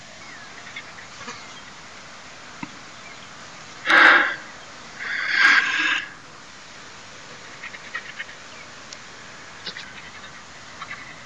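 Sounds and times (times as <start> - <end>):
steady background hiss: 0.0 - 11.2
Cape vulture giving harsh hissing bursts: 3.8 - 6.3.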